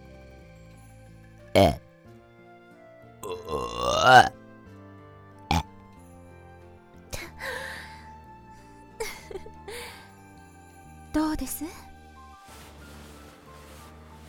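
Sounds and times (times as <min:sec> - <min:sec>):
long croaking burp: 0:01.6 - 0:01.8, 0:03.2 - 0:04.3, 0:05.5 - 0:05.7
speech: 0:01.6 - 0:01.8
throaty bursts and breathy sounds: 0:03.2 - 0:04.3, 0:05.5 - 0:05.8.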